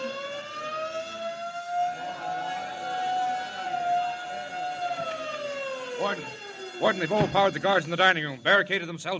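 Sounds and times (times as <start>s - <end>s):
prison siren wailing: 0.0s - 8.6s
prison alarm bells ringing: 0.0s - 9.1s
speech: 6.0s - 9.1s.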